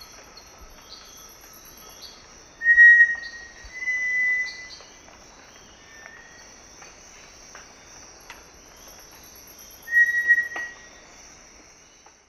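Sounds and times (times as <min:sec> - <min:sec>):
constant high-pitched insect hum: 0:00.0 - 0:12.2
Cinereous tinamou Crypturellus cinereus duet of clear steady whistles: 0:02.6 - 0:04.7, 0:09.9 - 0:10.8.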